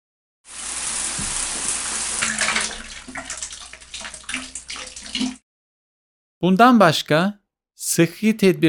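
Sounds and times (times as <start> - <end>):
water pouring from a tap into a bathtub or shower: 0.5 - 5.4
water splashing and gurgling in a filling bathtub: 1.2 - 5.4
speech: 6.4 - 8.6.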